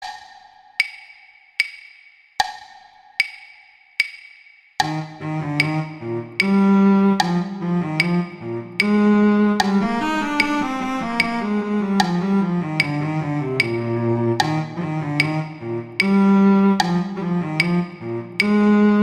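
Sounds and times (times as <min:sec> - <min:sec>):
cello duet: 0:04.8 - 0:19.0.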